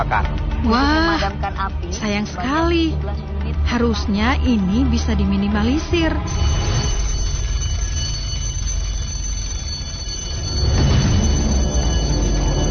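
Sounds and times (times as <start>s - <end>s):
speech: 0.0s - 6.6s
fire alarm ringing: 3.7s - 12.6s.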